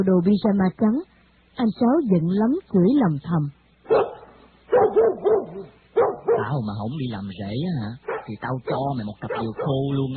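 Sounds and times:
speech: 0.0s - 4.0s, 6.5s - 10.1s
lean Vietnamese chó cò dog barking at a visitor: 3.9s - 6.6s, 8.0s - 10.1s.

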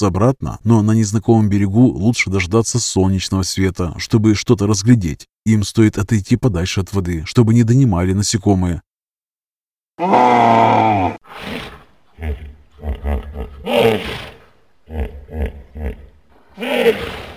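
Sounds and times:
speech: 0.0s - 8.9s, 10.0s - 11.5s, 12.2s - 17.3s
large-mouthed wild beast grunting: 10.0s - 17.3s
large-mouthed wild beast roaring by a lake: 10.0s - 17.3s.

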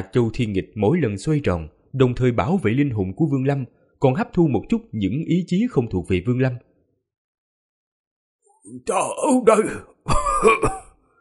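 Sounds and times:
speech: 0.0s - 6.7s, 8.7s - 10.8s
voice performer acting harsh rasping coughs in an old man's voice: 10.1s - 11.0s.

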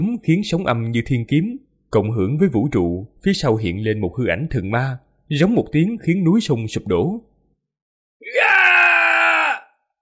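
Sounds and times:
speech: 0.0s - 7.3s
man screaming in agony: 8.2s - 9.8s.

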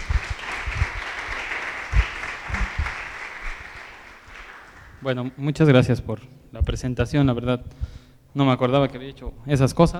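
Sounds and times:
audience applause welcoming a guest lecturer at an academic talk: 0.0s - 5.1s
speech: 5.0s - 9.9s.

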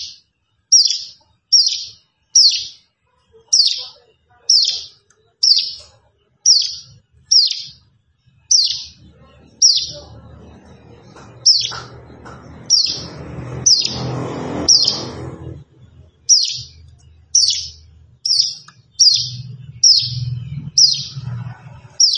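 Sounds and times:
plain prinia song of loud high down-slurred chirps: 0.0s - 22.1s
low rumbling noise: 8.3s - 22.1s.

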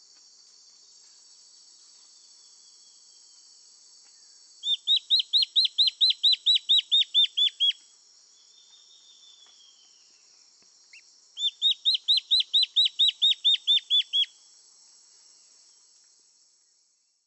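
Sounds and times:
Black-faced antbird Myrmoborus myotherinus ochrolaemus song: 4.2s - 14.4s.

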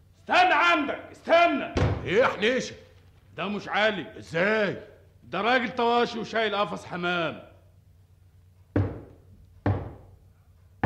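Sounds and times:
speech: 0.3s - 2.8s, 3.4s - 7.5s
knocking on a door: 8.7s - 10.1s.

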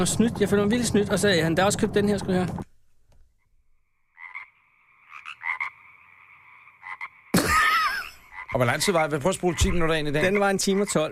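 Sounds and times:
speech: 0.0s - 2.7s, 8.5s - 11.1s
frog croaking in two-toned chirping bursts: 3.7s - 11.1s.

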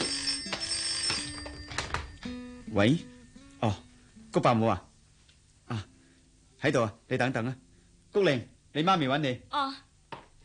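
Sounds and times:
telephone ringing: 0.0s - 2.8s
faint hiss: 2.1s - 10.4s
speech: 2.8s - 3.8s, 4.4s - 4.9s, 5.7s - 5.9s, 6.6s - 9.8s.

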